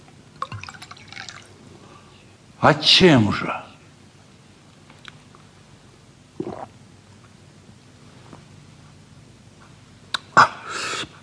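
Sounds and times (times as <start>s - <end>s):
liquor pouring into a glass: 0.4s - 1.6s
speech: 2.6s - 3.7s.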